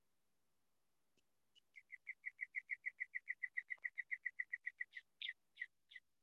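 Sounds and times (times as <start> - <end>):
bird chirping outdoors: 1.5 - 6.2.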